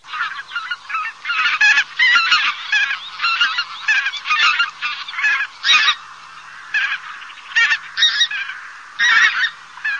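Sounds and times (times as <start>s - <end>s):
bird calling: 0.0s - 9.9s.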